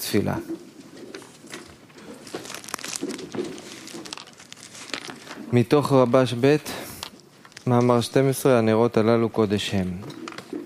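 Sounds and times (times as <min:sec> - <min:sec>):
speech: 0:00.1 - 0:00.6, 0:05.5 - 0:06.9, 0:07.7 - 0:10.2
paper sheets rustling as they are picked up: 0:01.1 - 0:06.4.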